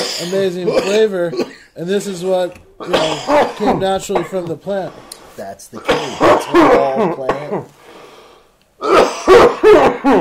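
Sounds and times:
person coughing after inhaling from a cannabis vape of whole-plant extract: 0:00.0 - 0:01.8, 0:02.8 - 0:04.5, 0:05.8 - 0:07.7, 0:08.8 - 0:10.1
speech: 0:00.2 - 0:07.8, 0:08.8 - 0:10.1.

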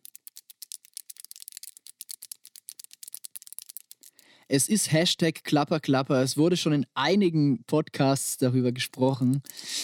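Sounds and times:
handmade carp-themed jewelry bracelets rattling when shaken: 0:00.0 - 0:04.3
speech: 0:04.5 - 0:09.8.

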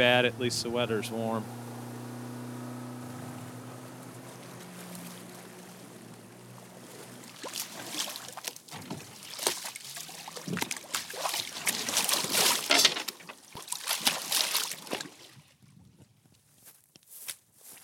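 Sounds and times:
speech: 0:00.0 - 0:01.6
boat engine droning low and steady: 0:00.0 - 0:09.2, 0:09.8 - 0:13.4
choppy water on the York River slapping and splashing against the hull: 0:04.0 - 0:15.5.

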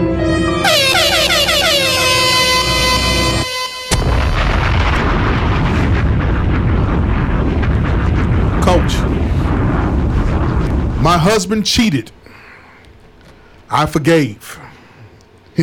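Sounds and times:
air horn sound effect blasts: 0:00.0 - 0:04.4
booming crackling burst of noise: 0:00.4 - 0:13.7
speech: 0:11.3 - 0:12.2, 0:13.7 - 0:14.6.

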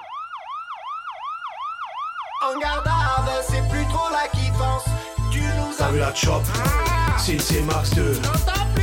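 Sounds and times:
emergency vehicle siren wailing: 0:00.0 - 0:03.4
speech: 0:02.4 - 0:08.8
heavy booming music beat with bass and synths: 0:02.7 - 0:08.8.

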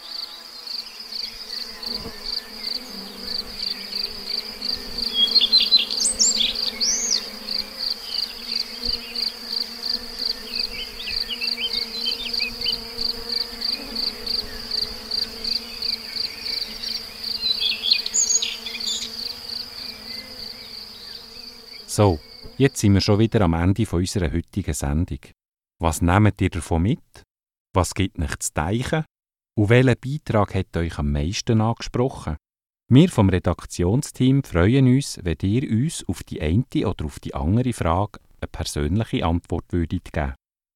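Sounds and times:
rapid evenly pulsing high insect trill: 0:00.0 - 0:22.6
steady low hum of buzzing bees: 0:00.0 - 0:22.9
speech: 0:01.9 - 0:02.2, 0:22.0 - 0:40.4.

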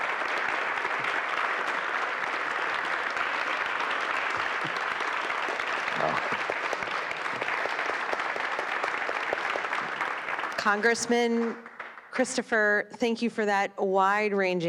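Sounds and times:
people cheering: 0:00.0 - 0:10.8
sizable audience clapping: 0:00.0 - 0:12.6
speech: 0:10.6 - 0:14.6.

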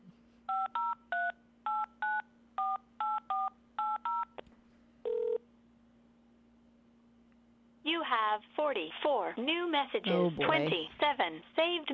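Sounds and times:
telephone keypad tones dialing into a landline voicemail: 0:00.5 - 0:04.4
speech: 0:08.4 - 0:11.9.

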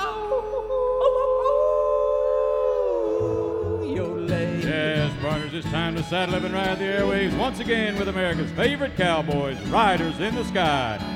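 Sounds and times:
person howling in imitation of a wolf in a cowboy song: 0:00.0 - 0:04.6
instrumental music of a cowboy song: 0:03.2 - 0:11.1
speech: 0:05.6 - 0:11.1.

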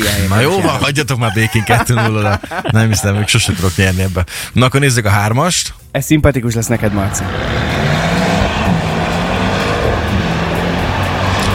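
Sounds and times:
laughter: 0:00.0 - 0:04.3
speech: 0:00.1 - 0:07.6
racing car engine roaring: 0:06.8 - 0:11.5.

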